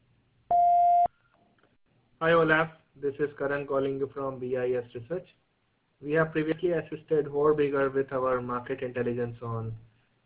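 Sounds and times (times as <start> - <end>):
voicemail beep tone: 0.5 - 1.1
speech: 2.2 - 5.4, 6.0 - 9.9.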